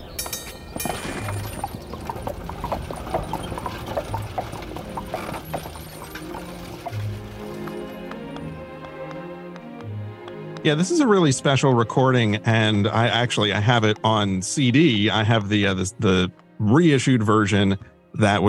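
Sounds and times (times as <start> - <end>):
streetcar wheels mechanical rattle and creak: 0.0 - 8.4
horse hooves clip-clopping while pulling a streetcar: 0.0 - 17.0
speech: 10.6 - 18.4.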